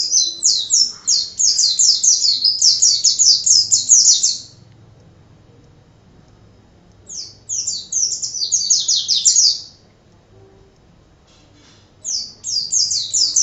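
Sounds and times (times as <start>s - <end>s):
white-eye singing rapid high sweet chirps: 0.0s - 4.7s, 7.0s - 9.8s, 12.0s - 13.4s.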